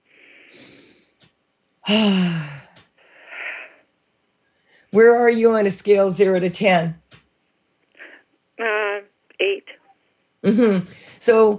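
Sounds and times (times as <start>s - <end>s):
deep breathing: 0.0s - 1.3s, 1.9s - 4.9s
speech: 1.9s - 2.5s, 4.9s - 7.0s, 10.5s - 11.5s.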